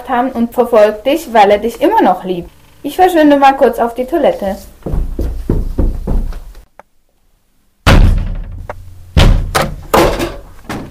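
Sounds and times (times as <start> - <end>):
speech: 0.0 - 4.7
heavy thuds of a door being kicked: 4.8 - 6.4, 7.8 - 10.9
booming bangs: 7.8 - 10.3
door splintering as it is kicked in: 7.9 - 10.9.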